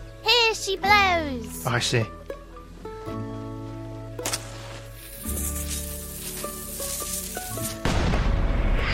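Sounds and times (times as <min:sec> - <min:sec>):
steady musical backdrop: 0:00.0 - 0:08.9
speech: 0:00.6 - 0:02.2
cannon firing: 0:07.8 - 0:08.7
rumbling boom: 0:07.8 - 0:08.9.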